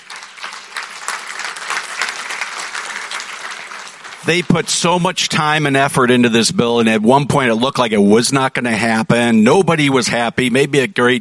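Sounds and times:
audience applause at a business event: 0.0s - 5.7s
speech: 4.2s - 11.1s.

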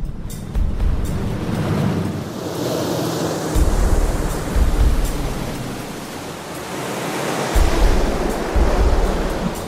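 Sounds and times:
water washing over a sealed kayak: 1.5s - 9.6s.

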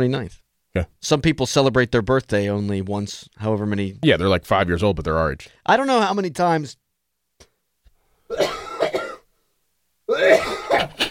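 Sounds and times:
speech: 0.0s - 6.8s, 10.1s - 10.9s
person coughing: 8.3s - 9.3s, 10.1s - 11.0s.

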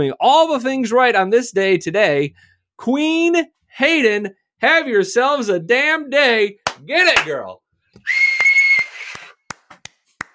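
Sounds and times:
speech: 0.0s - 8.2s
person whistling a steady note: 8.0s - 9.4s.

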